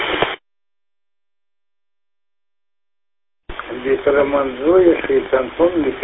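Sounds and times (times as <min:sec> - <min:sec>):
harsh radio static: 0:00.0 - 0:00.4, 0:03.5 - 0:06.0
garbled radio transmission over EchoLink: 0:03.5 - 0:06.0
speech: 0:03.9 - 0:06.0.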